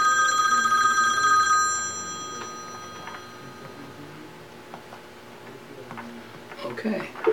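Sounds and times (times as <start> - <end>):
telephone ringing with an electronic trill: 0.0 - 3.8.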